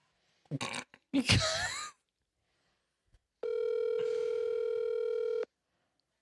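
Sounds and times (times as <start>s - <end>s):
throaty vocal noise: 0.5s - 1.0s
buzzing phone ringback tone over a speakerphone: 3.4s - 5.5s.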